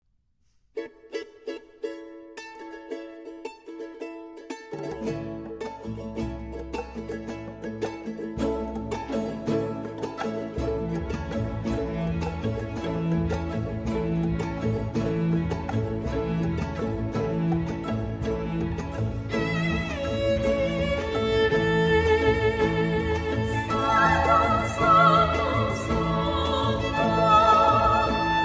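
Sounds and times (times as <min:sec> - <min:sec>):
charango: 0:00.6 - 0:28.4
guitar: 0:04.6 - 0:28.4
percussion: 0:04.7 - 0:28.4
solo violin: 0:08.6 - 0:28.4
vocal quartet singing: 0:22.4 - 0:28.4.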